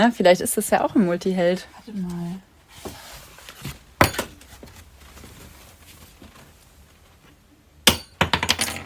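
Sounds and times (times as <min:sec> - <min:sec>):
speech: 0:00.0 - 0:03.0
quiet handling noise: 0:02.8 - 0:08.8
metal key dropping onto a hard floor: 0:07.9 - 0:08.8.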